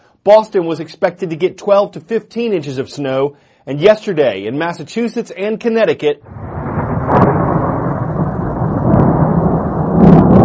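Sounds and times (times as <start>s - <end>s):
speech: 0.2s - 6.4s
rolling thunder during a winter snowstorm: 6.2s - 10.4s.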